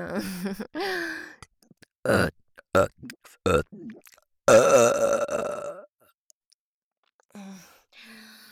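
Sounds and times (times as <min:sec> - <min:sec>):
long loud drawn-out burp: 0:02.1 - 0:03.7, 0:04.5 - 0:05.9
short throaty bursts and grunts: 0:02.1 - 0:05.8.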